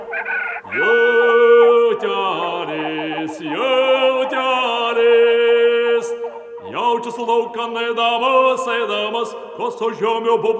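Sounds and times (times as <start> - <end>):
hens cackling: 0.0 - 7.2
speech: 0.7 - 1.0, 7.1 - 10.5.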